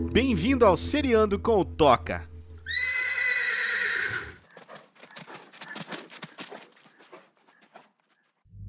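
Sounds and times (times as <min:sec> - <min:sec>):
speech: 0:00.1 - 0:02.3
loud shrill horse whinny: 0:02.7 - 0:07.9
horse hooves clip-clopping: 0:03.9 - 0:08.4.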